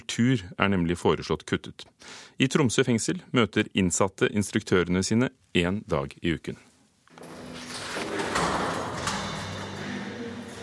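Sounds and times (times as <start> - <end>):
speech: 0.0 - 6.7
heavy iron door in Tromsø prison in Norway grinding open and closed: 7.1 - 10.6.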